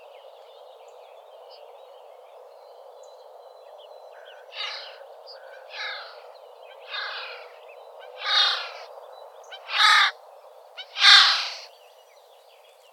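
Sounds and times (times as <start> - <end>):
Eurasian jay Garrulus glandarius giving harsh rasping screeches: 8.2 - 8.8, 9.7 - 10.1, 11.0 - 11.6.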